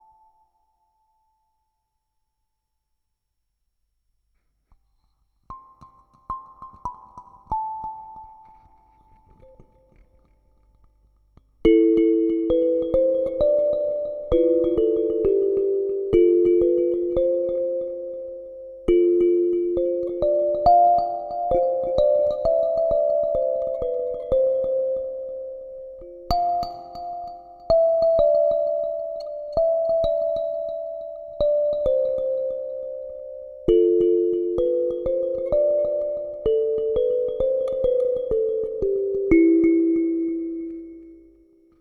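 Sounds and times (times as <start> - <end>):
electric kalimba: 11.7 - 41.4.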